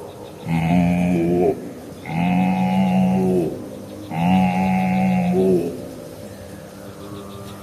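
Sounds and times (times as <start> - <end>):
human voice imitating a cow mooing: 0.4 - 5.8.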